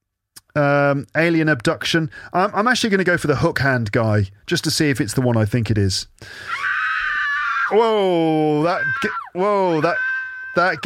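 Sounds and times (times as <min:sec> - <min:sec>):
speech: 0:00.5 - 0:06.7, 0:07.7 - 0:10.8
ear-splitting scream sound effect: 0:06.3 - 0:10.8.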